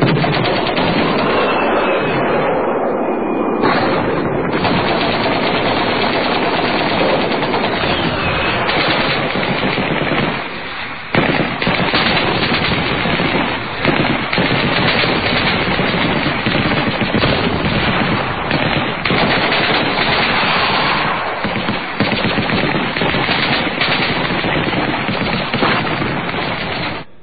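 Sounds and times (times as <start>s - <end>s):
machine-gun fire rattling in overlapping bursts in a village at night: 0.0s - 1.6s, 3.6s - 10.5s, 11.1s - 27.1s
scattered gunshots in a village at night: 0.0s - 2.5s, 3.6s - 27.1s.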